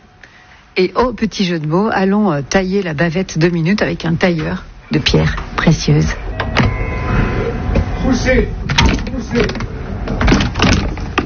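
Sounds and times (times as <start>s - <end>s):
speech: 0.8s - 6.2s, 8.1s - 8.6s, 9.3s - 10.2s
old shop door pushed open with scraping and rattling: 6.2s - 11.2s.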